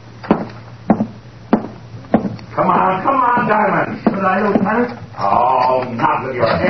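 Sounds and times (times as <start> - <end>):
knocking on a door: 0.3 - 4.9
voices talking: 2.5 - 6.6.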